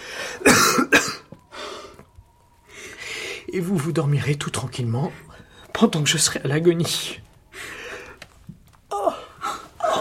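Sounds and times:
harsh choking coughing fit: 0:00.4 - 0:01.2
speech: 0:03.6 - 0:07.3.

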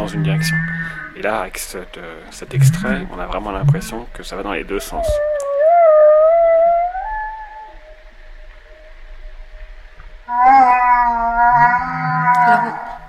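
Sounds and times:
speech: 0:00.0 - 0:05.4
humpback whale calls: 0:00.0 - 0:13.0.

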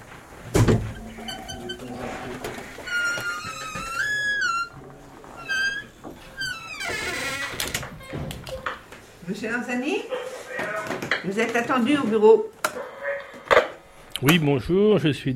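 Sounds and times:
heavy iron door clanking at a furniture rental business in Paris: 0:00.5 - 0:08.7
iron door hinges squealing: 0:00.8 - 0:08.2
speech: 0:09.3 - 0:12.5, 0:14.2 - 0:15.3.

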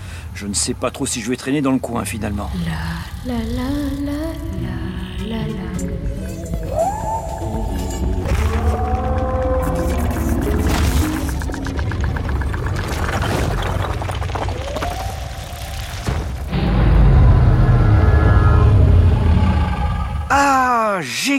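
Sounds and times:
speech: 0:00.4 - 0:07.0, 0:21.0 - 0:21.3
Tyrannosaurus rex roar sound effect: 0:02.2 - 0:20.4
deep rumbling bass: 0:02.5 - 0:20.3.

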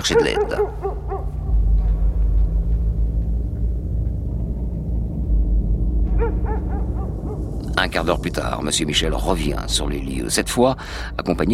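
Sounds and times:
speech: 0:00.0 - 0:01.1, 0:07.9 - 0:11.5
dog barking: 0:00.0 - 0:01.3
heavy steady low rumble: 0:00.0 - 0:11.5.

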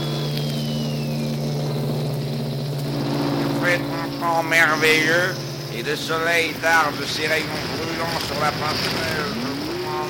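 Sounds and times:
faint higher whistle gliding down: 0:00.0 - 0:08.1
deep horns of anchored ships sounding in harbor: 0:01.8 - 0:10.0
speech: 0:04.3 - 0:09.5.

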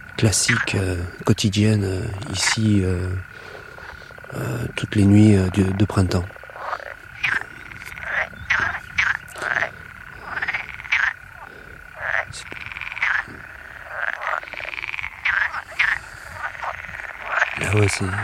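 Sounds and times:
green frogs croaking in a ditch at night: 0:00.0 - 0:18.2
speech: 0:00.2 - 0:03.6, 0:04.3 - 0:06.4, 0:18.0 - 0:18.2.

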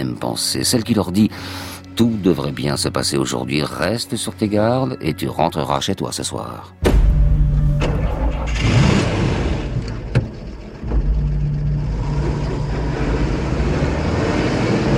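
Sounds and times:
speech: 0:00.1 - 0:07.1
armored security truck engine starting and pulling out of a garage: 0:07.1 - 0:14.9.

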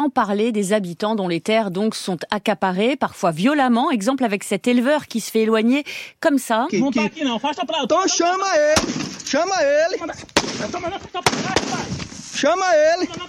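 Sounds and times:
speech: 0:00.0 - 0:13.2
gunshots fired into the air by a guard at a cotton plantation: 0:08.7 - 0:09.4, 0:10.4 - 0:12.2.

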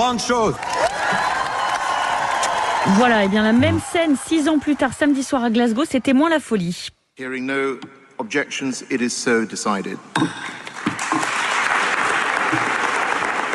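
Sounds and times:
speech: 0:00.0 - 0:01.3, 0:02.8 - 0:10.5
subdued applause from an audience at a conference: 0:00.3 - 0:04.8, 0:10.8 - 0:13.5.

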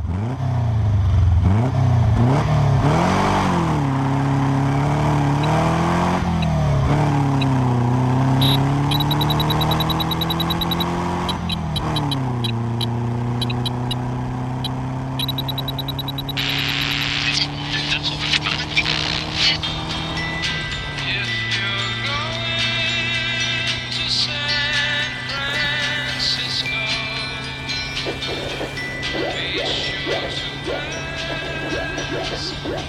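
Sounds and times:
Volkswagen camper van engine droning and revving through gear changes: 0:00.0 - 0:32.8
chirpy arcade-style video-game beeps: 0:06.3 - 0:06.6, 0:07.3 - 0:07.6, 0:08.4 - 0:19.6.

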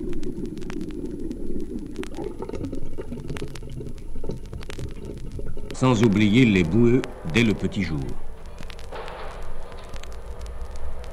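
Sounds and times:
water gurgling through pipes: 0:00.0 - 0:08.4
speech: 0:00.2 - 0:00.8, 0:02.2 - 0:03.5, 0:05.8 - 0:08.2.

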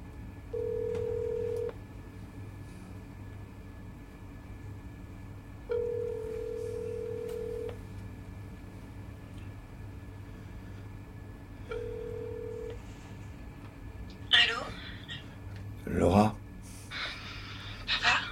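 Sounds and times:
constant low rumble: 0:00.0 - 0:18.2
telephone line ringback tones as a call is placed: 0:00.5 - 0:01.8, 0:05.7 - 0:07.8, 0:11.7 - 0:12.8.

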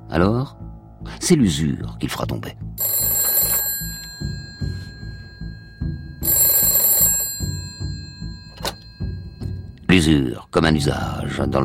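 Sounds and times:
speech: 0:00.1 - 0:03.0, 0:10.0 - 0:11.6
old-fashioned telephone bell ringing in a family home: 0:02.8 - 0:09.8
low steady rhythmic thudding: 0:03.8 - 0:10.0.

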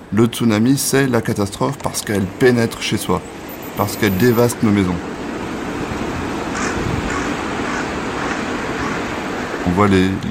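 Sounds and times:
steady road traffic: 0:00.0 - 0:10.2
speech: 0:00.1 - 0:05.2, 0:09.7 - 0:10.2
wind noise: 0:01.2 - 0:10.2
several crows cawing: 0:02.8 - 0:09.7.

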